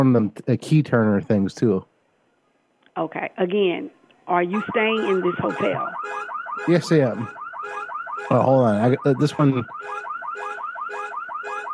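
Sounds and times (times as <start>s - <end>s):
speech: 0.0s - 1.9s, 3.0s - 10.5s
car alarm on a newer car wailing in rising chirps: 4.3s - 11.7s.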